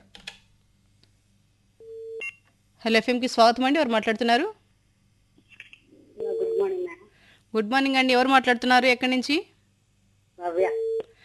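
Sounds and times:
telephone line tone as a phone-in call connects: 1.8 - 2.4, 6.2 - 6.8, 10.6 - 11.1
speech: 2.8 - 4.6, 7.6 - 9.5, 10.4 - 10.8.

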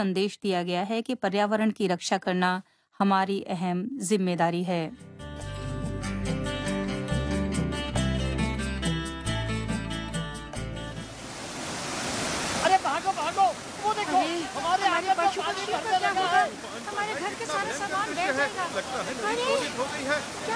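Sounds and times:
speech: 0.0 - 5.2, 14.5 - 20.5
music: 4.9 - 11.3
floodwater rushing over farm fields and washing away crops: 11.0 - 20.5.

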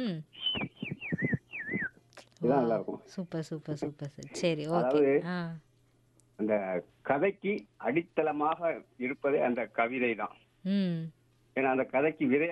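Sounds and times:
speech: 0.0 - 0.6, 2.4 - 5.7, 6.4 - 12.5
mimicry artist whistling an imitation of a koel's call: 0.3 - 1.9.

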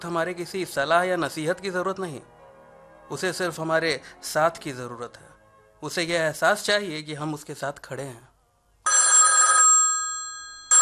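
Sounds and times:
speech: 0.0 - 2.4, 3.1 - 8.3
telephone ringing with a bright high electronic ring: 8.9 - 10.7.

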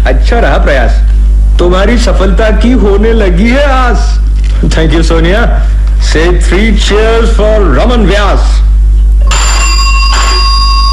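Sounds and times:
speech: 0.1 - 8.8
telephone bell ringing with bright metallic jangling: 9.2 - 10.9.

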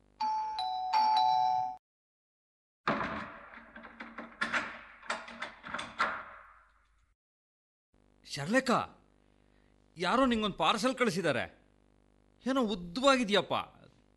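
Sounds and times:
two-note electronic doorbell chime: 0.2 - 1.8
clicks and knocks: 2.9 - 6.8
speech: 8.3 - 9.0, 10.0 - 11.6, 12.4 - 14.1.

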